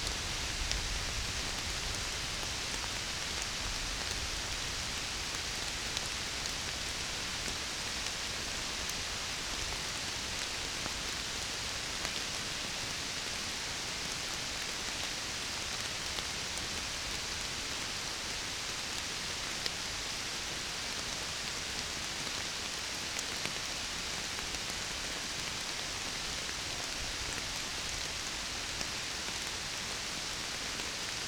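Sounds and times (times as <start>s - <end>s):
rain falling on a forest during a summer storm: 0.0s - 31.2s.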